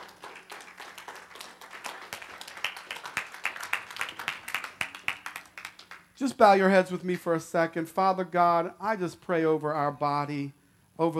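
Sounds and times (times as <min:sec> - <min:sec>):
audience clapping in a steady rhythm: 0:00.0 - 0:06.2
speech: 0:06.2 - 0:11.1.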